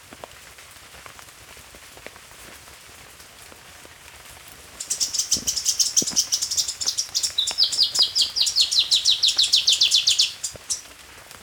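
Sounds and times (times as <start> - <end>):
black-crested warbler Myiothlypis nigrocristata song: 4.8 - 10.9.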